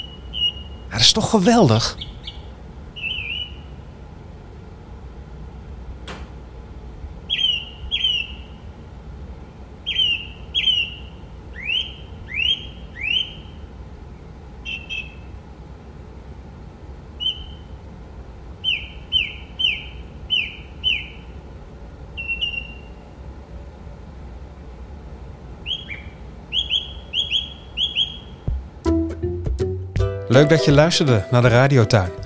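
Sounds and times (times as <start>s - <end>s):
song thrush singing heard through an open window: 0.0s - 3.8s, 7.3s - 8.6s, 9.9s - 13.6s, 18.6s - 21.3s, 22.2s - 22.9s, 25.6s - 32.2s
quiet hum: 0.0s - 28.8s
speech: 0.9s - 2.1s, 30.4s - 32.2s.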